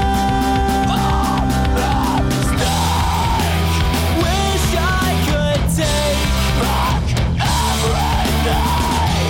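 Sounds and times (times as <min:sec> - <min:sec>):
harsh screamed and yelled emo vocals: 0:00.0 - 0:04.3, 0:06.4 - 0:09.2
distorted guitars in an emo rock song: 0:00.0 - 0:09.2
pounding drums in an emo rock song: 0:00.0 - 0:09.2.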